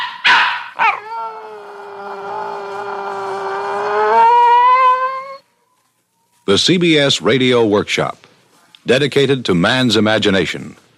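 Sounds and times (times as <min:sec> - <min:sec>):
dog barking: 0:00.0 - 0:01.0
dog howling: 0:00.7 - 0:05.8
speech: 0:06.5 - 0:08.2, 0:08.8 - 0:10.8.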